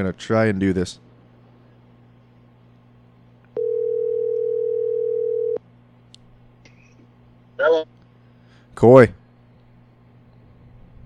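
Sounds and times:
speech: 0.0s - 1.1s, 8.8s - 9.2s
faint low hum: 0.0s - 11.0s
steady electronic telephone dialing tone: 3.6s - 5.6s.

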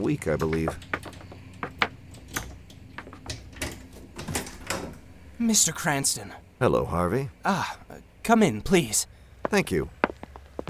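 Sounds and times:
speech: 0.0s - 1.0s, 5.4s - 10.0s
side door rattling knocks: 0.3s - 5.1s.

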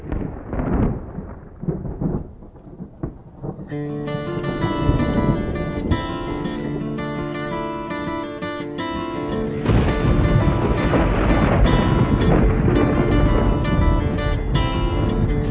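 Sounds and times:
deep rolling thunder: 0.0s - 15.4s
steady rain hiss: 0.0s - 15.4s
guitar-driven country song: 3.7s - 15.4s.

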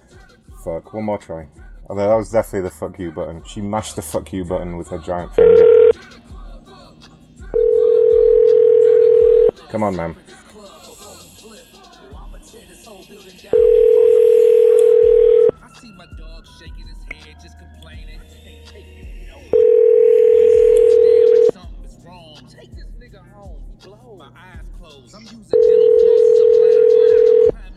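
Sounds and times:
speech: 0.6s - 6.1s, 9.7s - 10.4s
telephone tones during a call: 5.4s - 6.0s, 7.6s - 9.5s, 13.6s - 15.5s, 19.5s - 21.5s, 25.6s - 27.5s.

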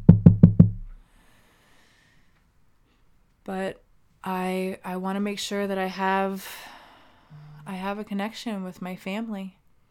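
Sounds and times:
knocking on wood: 0.0s - 0.9s
speech: 3.5s - 6.7s, 7.7s - 9.6s.

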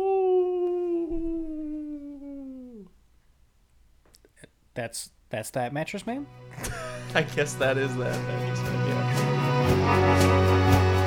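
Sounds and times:
person imitating a wolf howl for Halloween: 0.0s - 2.9s
speech: 4.8s - 10.9s
laughter: 6.6s - 9.3s.

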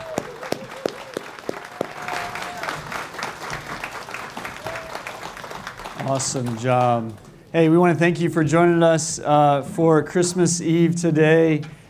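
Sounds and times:
faint cheers: 0.0s - 3.0s, 4.4s - 5.2s
audience applause for children: 0.0s - 7.3s
speech: 6.1s - 11.8s.

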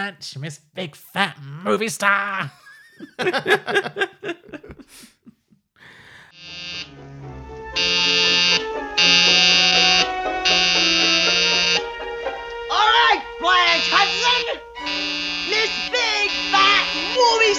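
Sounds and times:
speech: 0.0s - 5.2s
people laughing: 2.1s - 6.3s
harsh electric call buzzer pressed by a button: 6.3s - 7.0s, 7.8s - 11.9s, 13.6s - 17.5s.

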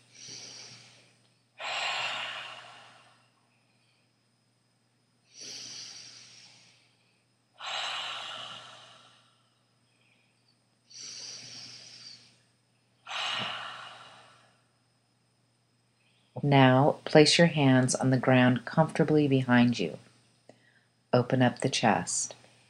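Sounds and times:
Ujjayi breathing during a seated yoga pose: 0.0s - 3.2s, 5.3s - 7.0s, 7.6s - 9.4s, 10.9s - 12.4s, 13.1s - 14.6s
faint low hum: 0.0s - 22.6s
speech: 16.4s - 20.1s, 21.2s - 22.4s.

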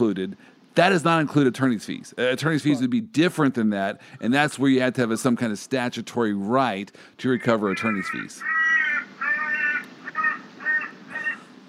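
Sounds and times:
speech: 0.0s - 8.6s
crows cawing outside window: 7.4s - 11.5s.

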